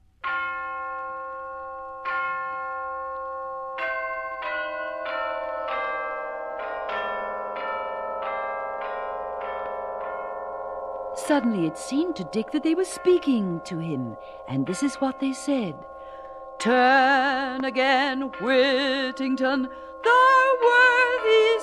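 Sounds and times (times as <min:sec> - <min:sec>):
church bells ringing in a steady peal: 0:00.2 - 0:21.6
speech: 0:11.3 - 0:15.9, 0:16.6 - 0:21.6.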